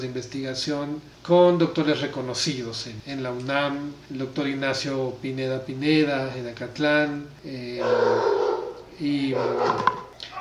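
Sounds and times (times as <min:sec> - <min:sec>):
speech: 0:00.0 - 0:08.4, 0:09.0 - 0:10.3
dogs barking: 0:07.8 - 0:10.3.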